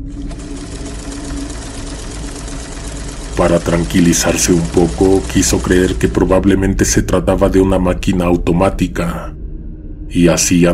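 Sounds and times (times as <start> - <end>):
sewing machine running: 0.0 - 6.7
speech: 3.4 - 9.4, 10.1 - 10.7.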